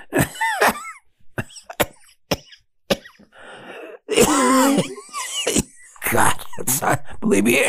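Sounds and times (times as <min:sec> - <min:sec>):
person recovering from COVID coughing: 0:00.0 - 0:03.3, 0:03.9 - 0:06.0
raspy strained wheezy gasps: 0:03.2 - 0:04.8
speech: 0:07.3 - 0:07.6.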